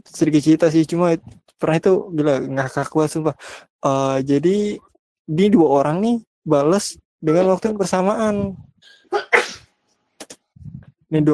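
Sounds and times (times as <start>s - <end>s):
speech: 0.0s - 9.6s, 11.1s - 11.3s
sneeze: 9.0s - 9.7s.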